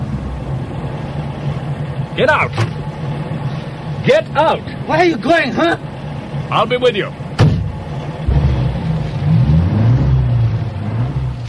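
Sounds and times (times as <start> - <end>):
van engine revving while shifting into second gear: 0.0 - 11.4
speech: 2.2 - 2.8, 4.0 - 5.9, 6.5 - 7.2.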